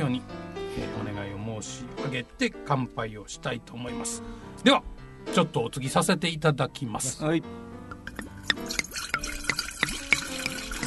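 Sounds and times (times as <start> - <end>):
speech: 0.0 - 8.8
sake glugging into a large mug: 8.0 - 10.8.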